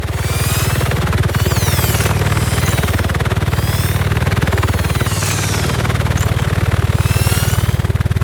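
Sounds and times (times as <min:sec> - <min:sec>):
hermit robot idling: 0:00.1 - 0:08.1.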